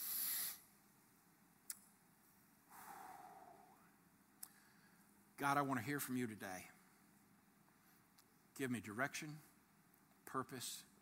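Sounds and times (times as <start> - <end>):
hissy burst: 0.0 - 0.6
deep breath drawn in through the nose: 0.0 - 0.7, 2.7 - 3.9
speech: 5.4 - 6.8, 8.6 - 9.5, 10.3 - 10.9.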